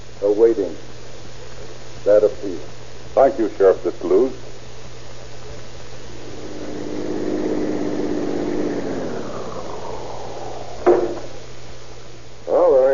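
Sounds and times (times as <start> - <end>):
speech: 0.2 - 0.9, 2.0 - 4.5
police car engine running: 6.0 - 11.5.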